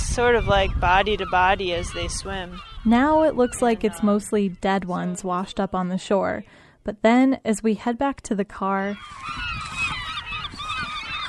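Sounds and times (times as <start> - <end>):
flock of gulls calling on a riverbank in Alaska during a hooligan fish run: 0.0 - 5.8, 8.8 - 11.2
speech: 0.2 - 9.7.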